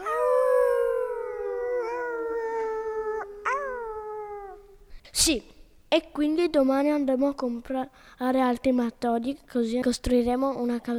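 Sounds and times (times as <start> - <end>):
wolf howling: 0.0 - 4.6
speech: 5.2 - 10.9.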